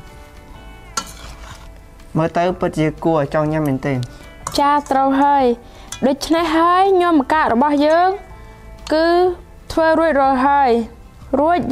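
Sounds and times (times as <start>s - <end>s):
ambarella, carrot, red onion and herbs being stirred together: 0.9s - 1.8s
speech: 2.2s - 8.2s, 8.9s - 11.7s.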